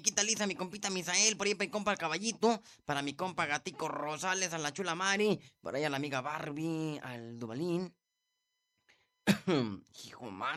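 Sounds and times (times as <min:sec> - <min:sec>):
speech: 0:00.0 - 0:08.0, 0:09.3 - 0:10.5
person with a harsh barking cough: 0:09.3 - 0:09.8.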